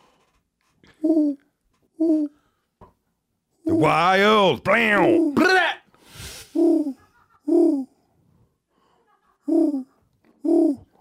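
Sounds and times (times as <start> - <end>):
speech: 0.9 - 1.4, 2.0 - 2.4, 3.7 - 5.7, 6.6 - 7.9, 9.5 - 10.9
owl hooting: 1.0 - 2.4, 4.8 - 5.6, 6.4 - 8.0, 9.5 - 10.9.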